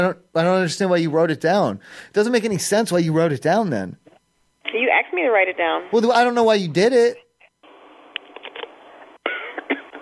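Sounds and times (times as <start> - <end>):
speech: 0.0 - 4.1, 4.7 - 7.2
person coughing harshly over a phone-like line: 9.3 - 10.0.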